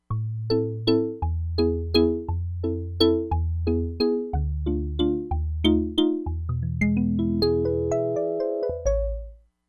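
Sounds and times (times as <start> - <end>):
Crumar Bit 99 synthesizer: 0.0 - 9.4.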